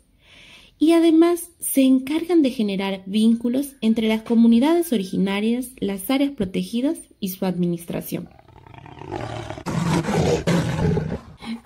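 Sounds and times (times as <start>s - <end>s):
speech: 0.8s - 8.4s
jaguar roar: 8.2s - 11.4s.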